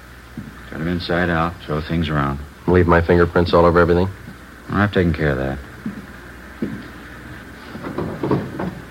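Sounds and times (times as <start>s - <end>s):
speech: 0.4s - 6.0s
wooden drawer holding old gloves pulled open: 7.8s - 8.8s.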